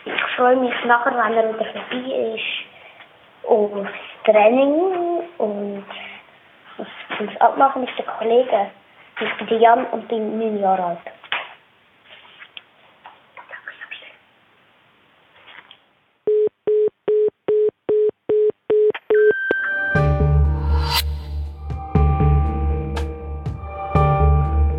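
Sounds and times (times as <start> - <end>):
faint rustling: 0.0 - 14.2, 15.2 - 16.0
speech: 0.1 - 2.7, 3.4 - 6.1, 6.8 - 11.2
short electronic answering machine beeps: 16.3 - 19.9
music: 19.3 - 24.7.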